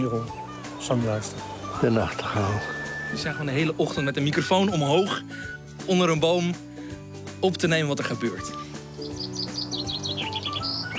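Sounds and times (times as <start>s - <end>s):
chaffinch singing in the early morning: 0.0s - 4.0s, 8.6s - 10.9s
speech: 0.0s - 6.7s, 7.4s - 8.6s.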